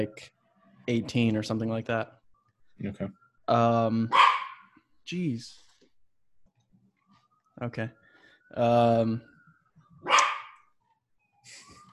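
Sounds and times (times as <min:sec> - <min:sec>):
speech: 0:00.0 - 0:02.2, 0:02.8 - 0:04.3, 0:05.1 - 0:05.6, 0:07.6 - 0:09.3
dog barking: 0:04.1 - 0:04.8, 0:10.0 - 0:10.7.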